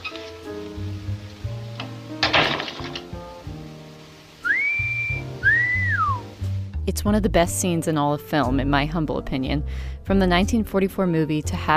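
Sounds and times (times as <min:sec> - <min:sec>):
music from a 1944 film scene: 0:00.0 - 0:11.7
whistled notes from a 1944 film scene: 0:04.4 - 0:06.3
speech: 0:06.9 - 0:11.7.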